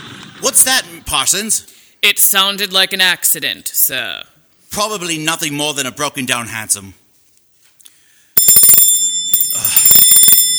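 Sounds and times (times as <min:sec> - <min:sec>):
speech: 0:00.4 - 0:07.0
bell ringing: 0:08.4 - 0:10.5.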